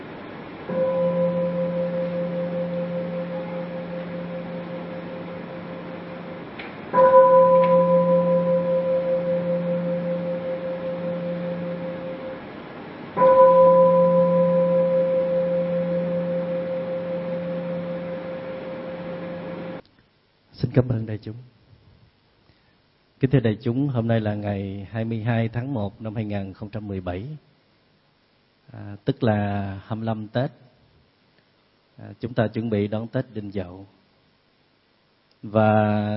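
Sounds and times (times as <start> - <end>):
bell strikes with long humming sustain: 0.7 - 12.6, 13.2 - 19.8
speech: 20.8 - 21.6, 23.2 - 27.5, 28.7 - 30.6, 32.0 - 34.0, 35.4 - 36.1.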